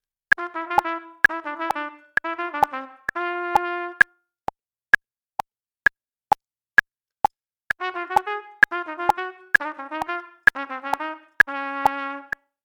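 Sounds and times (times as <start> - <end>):
trumpet: 0.4 - 4.1, 7.8 - 12.5.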